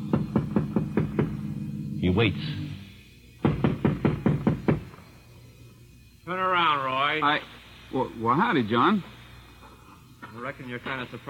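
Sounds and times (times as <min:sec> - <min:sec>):
firm knocking on the front door of a house: 0:00.0 - 0:01.5, 0:03.4 - 0:05.0
speech: 0:02.1 - 0:02.6, 0:07.2 - 0:09.1, 0:10.3 - 0:11.2.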